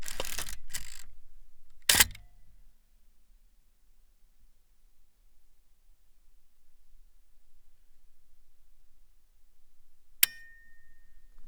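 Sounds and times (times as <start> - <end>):
medium format camera shutter with 8 second exposure: 0.0 - 1.1, 1.9 - 2.3.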